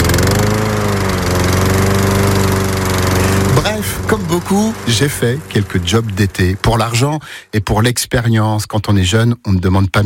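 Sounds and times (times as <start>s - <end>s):
ride-on lawn mower engine running at a car factory: 0.0s - 7.4s
speech: 4.3s - 10.0s.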